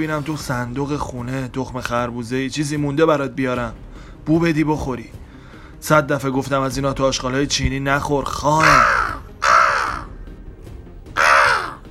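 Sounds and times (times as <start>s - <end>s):
speech: 0.0s - 5.2s, 5.8s - 9.0s
crow cawing harshly: 8.6s - 10.4s, 11.1s - 11.8s.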